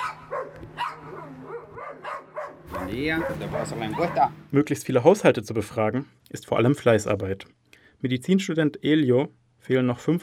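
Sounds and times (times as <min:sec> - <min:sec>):
dogs barking: 0:00.0 - 0:04.4
speech: 0:02.9 - 0:10.2.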